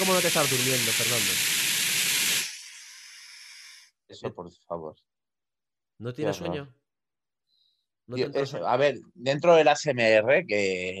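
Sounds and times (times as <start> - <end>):
speech: 0.0 - 1.6, 4.1 - 5.1, 6.0 - 6.8, 8.1 - 10.9
loud steady pink noise: 0.0 - 3.1.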